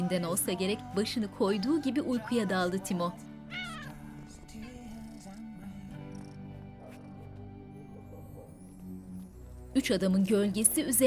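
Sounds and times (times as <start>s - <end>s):
speech: 0.1s - 3.7s, 9.8s - 11.0s
steady tonal background: 1.8s - 11.0s
ginger cat meowing: 3.5s - 5.4s.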